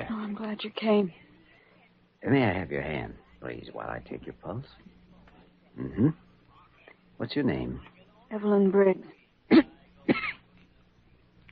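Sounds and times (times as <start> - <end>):
speech: 0.5 - 1.2, 2.2 - 5.0, 5.8 - 6.2, 7.2 - 10.3
feverish weak patient coughing: 9.5 - 10.4.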